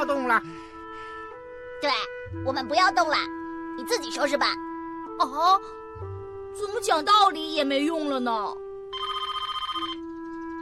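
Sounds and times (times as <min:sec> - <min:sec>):
speech: 0:00.3 - 0:00.8, 0:01.8 - 0:08.6
telephone trilling electronic ring: 0:08.9 - 0:10.2.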